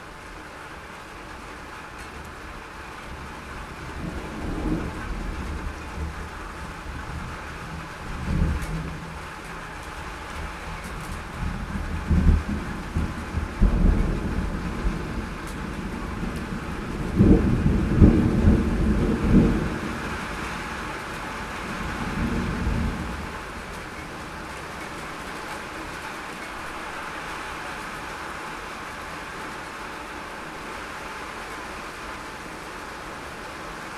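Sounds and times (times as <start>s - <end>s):
rain on a spring night: 0.0s - 33.9s
thunder rumbling on a rainy spring night: 3.1s - 25.7s.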